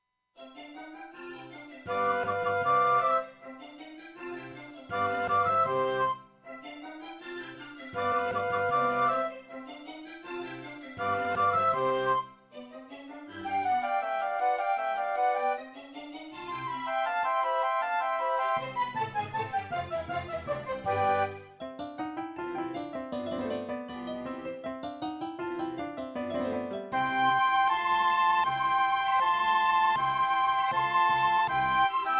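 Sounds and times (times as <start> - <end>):
classical concerto partial on a Serdaco X3MB Buran: 1.9 - 3.3, 4.8 - 6.2, 8.0 - 9.4, 10.4 - 12.2, 13.3 - 25.1, 25.7 - 32.1.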